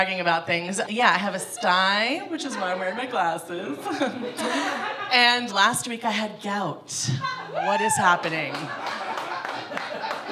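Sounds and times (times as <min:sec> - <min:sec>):
speech: 0:00.0 - 0:09.0
faint crowd murmur and chuckles: 0:00.9 - 0:05.5, 0:06.9 - 0:10.3
applause from many hands clapping: 0:08.2 - 0:10.3.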